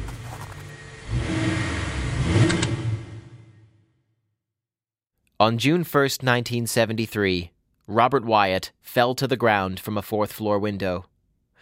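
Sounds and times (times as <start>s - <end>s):
car engine revving as it accelerates past on an icy bridge: 0.0s - 3.8s
speech: 5.4s - 11.1s.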